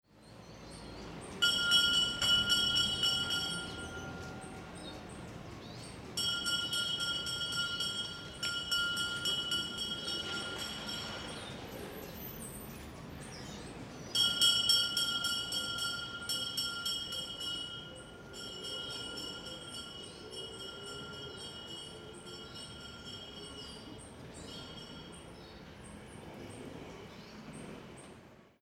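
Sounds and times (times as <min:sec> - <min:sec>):
garbage collector's bell ringing in a neighbourhood: 0:01.4 - 0:05.0, 0:05.6 - 0:11.9, 0:14.0 - 0:25.6.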